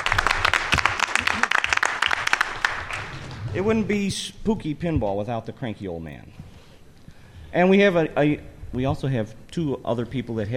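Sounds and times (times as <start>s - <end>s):
audience applause in a room: 0.0s - 4.0s
speech: 3.6s - 6.4s, 7.5s - 10.5s.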